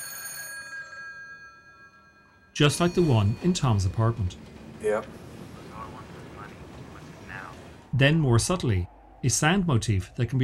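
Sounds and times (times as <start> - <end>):
old telephone bell ringing: 0.0 - 4.4
speech: 2.6 - 5.2, 7.9 - 10.4.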